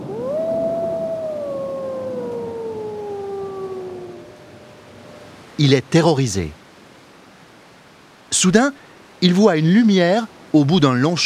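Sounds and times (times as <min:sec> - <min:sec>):
wolves howling in the distance on a snowy night: 0:00.0 - 0:05.7
speech: 0:05.6 - 0:06.6, 0:08.3 - 0:11.2.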